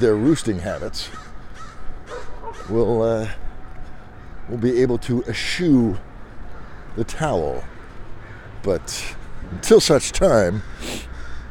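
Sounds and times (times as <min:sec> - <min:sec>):
speech: 0:00.0 - 0:01.3, 0:02.7 - 0:03.4, 0:04.5 - 0:06.1, 0:07.0 - 0:07.7, 0:08.6 - 0:11.1
crows cawing: 0:00.6 - 0:11.4.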